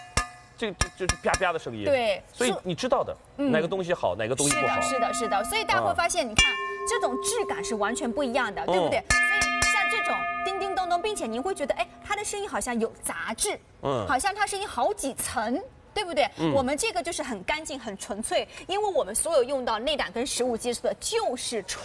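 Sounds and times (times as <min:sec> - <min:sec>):
people talking: 0:01.1 - 0:02.6, 0:03.4 - 0:21.8
titanium pot with pure titanium inner liner tapped, ringing like a bell: 0:04.4 - 0:12.7.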